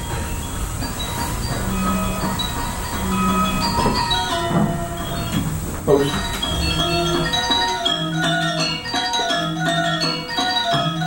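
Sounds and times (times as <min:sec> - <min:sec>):
big gong in gamelan music: 0:00.0 - 0:08.8
ringing metallic bar tones in gamelan music: 0:00.0 - 0:11.0
speech: 0:05.9 - 0:06.4.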